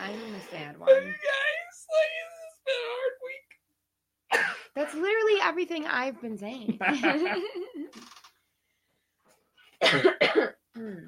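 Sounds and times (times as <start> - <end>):
speech: 0.5 - 1.3, 4.8 - 8.1, 9.9 - 11.0
coughing: 4.3 - 5.0, 9.8 - 11.0.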